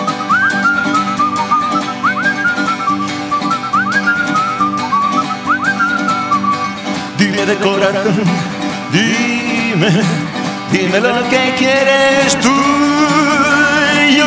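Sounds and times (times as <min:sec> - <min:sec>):
whistled melody: 0:00.0 - 0:07.2
speech: 0:07.5 - 0:13.3.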